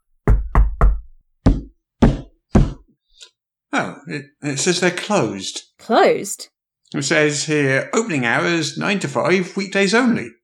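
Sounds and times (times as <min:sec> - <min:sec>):
knocking on a door: 0:00.3 - 0:02.9
speech: 0:03.8 - 0:10.4.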